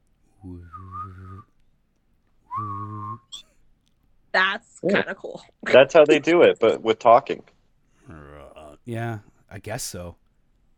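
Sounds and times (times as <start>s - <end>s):
speech: 0.4s - 0.9s, 4.4s - 7.5s, 8.9s - 10.2s
person humming a low steady tone: 0.4s - 1.5s, 2.5s - 3.4s, 8.1s - 8.8s
person whistling a wavering higher note: 0.5s - 1.6s, 2.5s - 3.4s.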